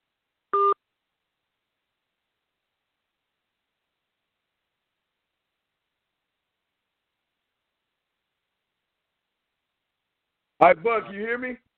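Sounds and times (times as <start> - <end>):
telephone keypad tone while placing a call: 0.6 - 0.8
speech: 10.6 - 11.7.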